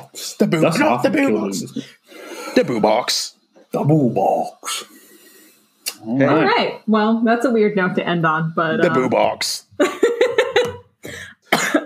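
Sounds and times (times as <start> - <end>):
speech: 0.1 - 5.0, 6.0 - 10.0
person coughing after inhaling spit: 11.0 - 11.8.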